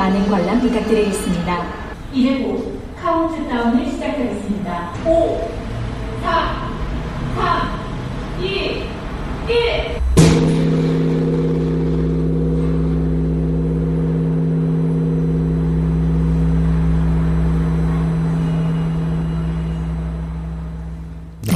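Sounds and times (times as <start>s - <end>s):
speech: 0.1s - 6.7s, 7.4s - 7.8s, 8.4s - 10.4s
large bronze bell struck and ringing: 10.0s - 21.5s.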